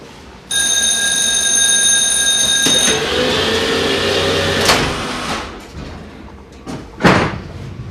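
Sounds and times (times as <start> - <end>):
tram warning tones in Naumburg, Germany: 0.5 - 4.7
tram doors thudding shut in Naumburg, Germany: 4.4 - 7.6.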